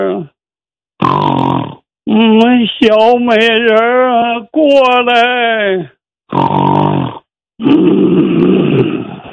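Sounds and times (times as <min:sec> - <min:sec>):
speech: 0:00.0 - 0:00.4, 0:02.6 - 0:09.1
performer imitating a man snoring heavily: 0:01.0 - 0:01.9, 0:06.3 - 0:09.3.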